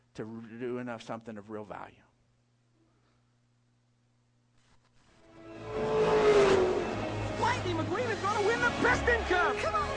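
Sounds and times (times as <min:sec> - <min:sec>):
speech: 0:00.2 - 0:02.1, 0:07.7 - 0:09.9
race car engines revving and roaring: 0:05.4 - 0:09.3.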